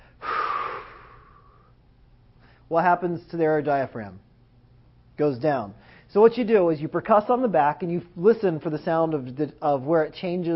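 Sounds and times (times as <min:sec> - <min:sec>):
person exhaling strongly during a chest examination: 0:00.0 - 0:01.8
speech: 0:02.7 - 0:04.2, 0:05.2 - 0:10.5.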